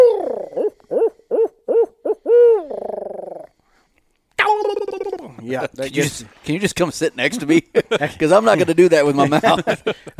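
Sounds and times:
owl hoot locator call: 0.0s - 3.5s
speech: 5.5s - 10.1s
laughter: 7.3s - 10.1s.

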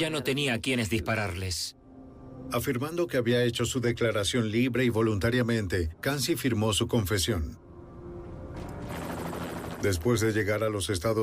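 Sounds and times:
speech: 0.0s - 1.8s, 2.4s - 7.6s, 9.8s - 11.2s
helicopter engine and rotors flying by: 8.4s - 10.7s.

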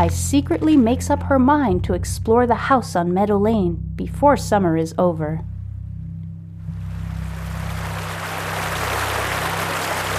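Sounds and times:
speech: 0.0s - 5.5s
low droning hum: 0.0s - 10.1s
rushing river water: 6.8s - 10.1s.

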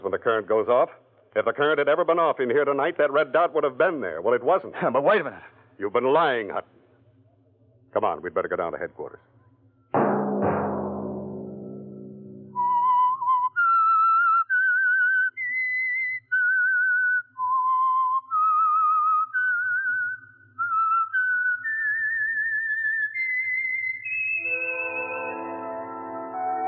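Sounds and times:
speech: 0.1s - 6.8s, 7.9s - 9.3s
swelling musical chord: 10.0s - 12.7s
brief low burst: 10.0s - 13.2s
whistled theme melody: 12.4s - 26.6s.

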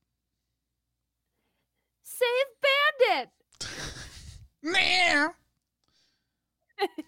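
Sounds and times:
person laughing: 3.6s - 4.6s, 6.8s - 7.0s
person imitating a dying cat with a raspy exhale and strained wail: 4.6s - 5.4s.

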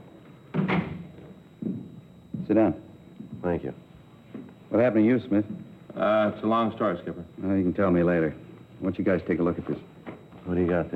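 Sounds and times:
faint room noise: 0.0s - 10.9s
door closing with a firm thud: 0.5s - 1.1s
speech: 2.5s - 2.8s, 4.8s - 9.9s, 10.5s - 10.9s.

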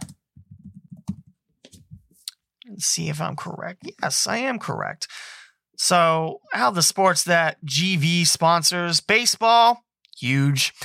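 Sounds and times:
typing on a computer keyboard: 0.0s - 1.3s
speech: 2.7s - 10.8s.

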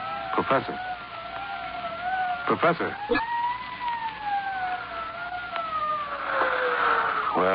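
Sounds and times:
police siren wailing: 0.0s - 7.5s
speech: 0.4s - 0.9s, 2.5s - 3.3s, 7.4s - 7.5s.

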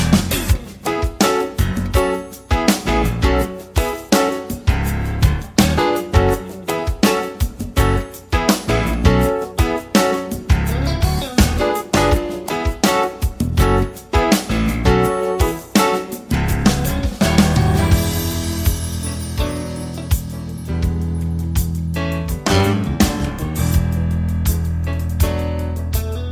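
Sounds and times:
steady punchy beat: 0.0s - 26.3s
warm keys: 0.0s - 26.3s
smooth jazz-pop cover song with male vocal: 16.6s - 19.2s.

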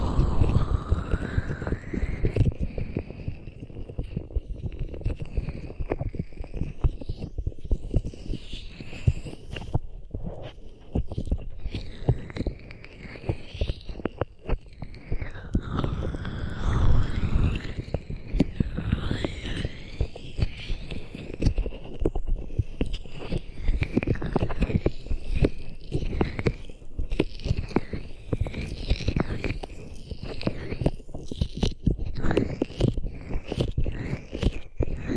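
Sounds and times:
hands rubbing against the microphone: 0.0s - 35.1s.

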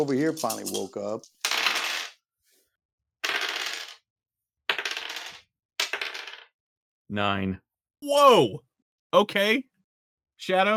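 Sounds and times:
speech: 0.0s - 1.4s, 7.1s - 9.7s, 10.4s - 10.7s
dice rolling across a hard tabletop: 0.0s - 2.2s, 3.2s - 4.1s, 4.7s - 6.6s.

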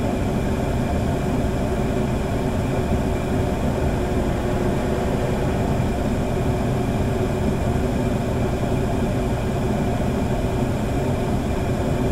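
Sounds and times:
basement furnace blower whirring: 0.1s - 12.0s
faint steady tones: 1.7s - 7.9s
soft roar of furnace flame: 2.0s - 8.1s.

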